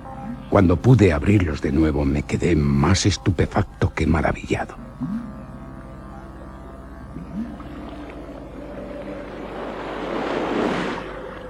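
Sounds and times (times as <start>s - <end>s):
low droning undertone: 0.0s - 11.4s
speech: 0.5s - 5.2s
sea waves: 7.8s - 11.4s.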